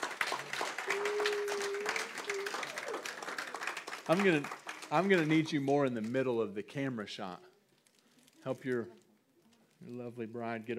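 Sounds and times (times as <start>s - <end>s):
audience applause in a room full of people: 0.0s - 6.1s
speech: 4.1s - 7.5s, 8.4s - 9.0s, 9.8s - 10.7s.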